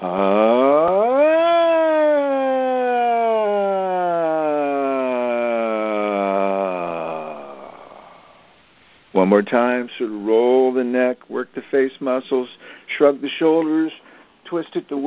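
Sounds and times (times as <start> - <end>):
voice singing a siren-like glide in a vocal warm-up exercise: 0.0 - 7.8
speech: 9.2 - 15.0
person taking a breath: 12.6 - 12.9, 14.0 - 14.4.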